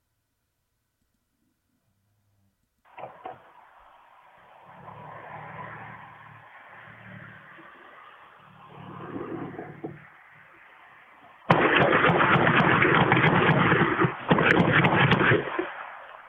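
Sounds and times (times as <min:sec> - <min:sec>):
car engine and tire roar as it passes: 0:02.9 - 0:16.2
sharp knocks: 0:11.5 - 0:15.6
rapid gunshots fired: 0:11.5 - 0:16.0.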